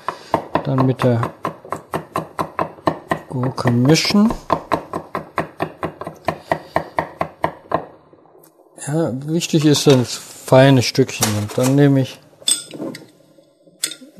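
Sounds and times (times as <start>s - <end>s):
knife chopping an egg into small cubes on a board: 0.0s - 7.9s
speech: 0.7s - 1.4s, 3.3s - 4.5s, 8.9s - 12.2s
glass jar clinking while taking out capers: 12.4s - 13.1s, 13.8s - 14.1s.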